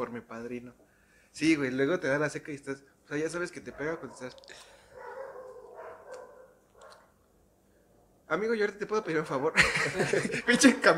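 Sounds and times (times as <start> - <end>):
speech: 0.0 - 4.8, 8.3 - 10.9
several dogs barking outside the room through a wall: 3.7 - 7.1
laughter: 9.6 - 10.9.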